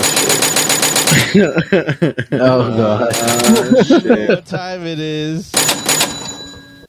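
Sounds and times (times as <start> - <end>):
cash register bell ringing: 0.0 - 1.4, 3.1 - 4.0, 5.5 - 6.8
laughter: 1.1 - 5.0
speech: 1.3 - 5.7.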